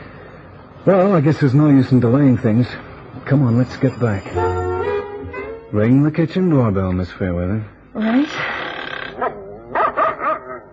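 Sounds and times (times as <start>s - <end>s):
speech: 0.8s - 4.5s, 5.7s - 8.4s
dogs barking: 9.2s - 10.7s.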